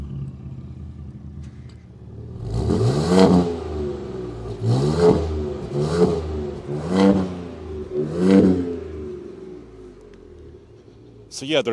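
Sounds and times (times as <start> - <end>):
Ford truck engine revving in quiet exhaust mode: 2.1 - 11.2
speech: 11.4 - 11.7.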